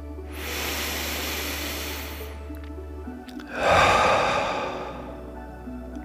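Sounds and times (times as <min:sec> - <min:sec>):
deep breathing in through the nose and out through the mouth: 0:00.3 - 0:02.4, 0:03.4 - 0:05.3.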